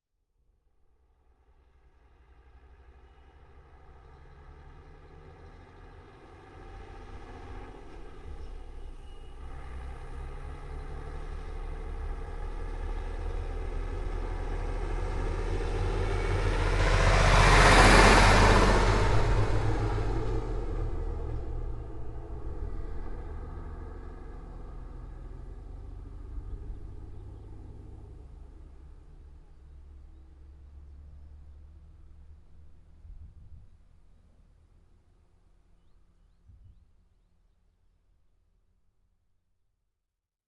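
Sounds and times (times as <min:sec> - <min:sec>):
Ural truck driving by close: 0:01.9 - 0:33.0.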